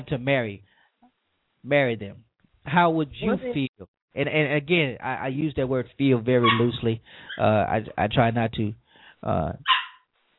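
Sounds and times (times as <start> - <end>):
speech: 0.0 - 0.8, 1.6 - 9.7
dog barking in a studio: 6.4 - 6.7, 9.6 - 10.0.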